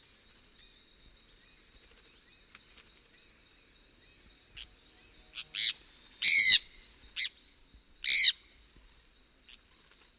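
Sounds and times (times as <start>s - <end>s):
sun parakeet squawks: 5.3s - 7.3s, 8.1s - 8.3s.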